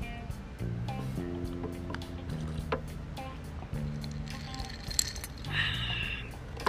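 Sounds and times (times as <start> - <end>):
steady low tonal hum: 0.0 - 6.6
drink cans tapping together in a toast: 3.8 - 5.9.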